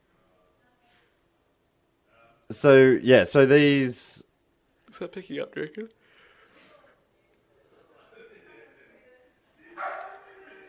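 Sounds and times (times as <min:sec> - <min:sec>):
speech: 0:02.5 - 0:04.1, 0:05.0 - 0:06.0
dog yipping faintly: 0:09.8 - 0:10.3
dog barking: 0:09.8 - 0:10.4.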